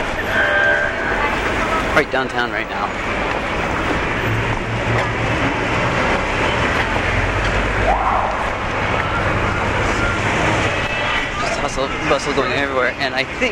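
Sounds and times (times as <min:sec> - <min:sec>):
city bus engine drone inside a moving bus: 0:00.0 - 0:13.4
road noise inside a moving city bus: 0:00.0 - 0:13.4
rising squeal inside a city bus: 0:00.2 - 0:01.7, 0:07.8 - 0:11.3
speech: 0:02.0 - 0:03.2, 0:11.7 - 0:13.4.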